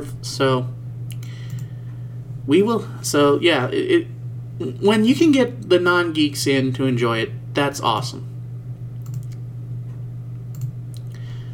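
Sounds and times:
speech: 0:00.0 - 0:00.8, 0:02.4 - 0:08.3
constant low electrical hum: 0:00.0 - 0:11.5
computer keyboard clicking: 0:01.5 - 0:01.7, 0:09.0 - 0:09.4, 0:10.5 - 0:10.8.

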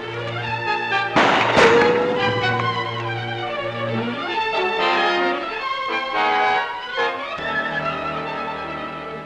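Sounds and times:
dramatic music score: 0:00.0 - 0:09.2
gunshots: 0:01.2 - 0:03.4.

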